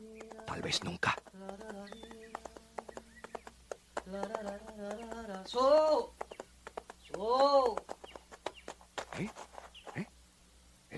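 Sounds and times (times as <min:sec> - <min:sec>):
horse hooves clip-clopping: 0:00.0 - 0:10.1
speech: 0:00.5 - 0:02.2, 0:04.1 - 0:06.2, 0:07.2 - 0:07.9, 0:09.2 - 0:09.4.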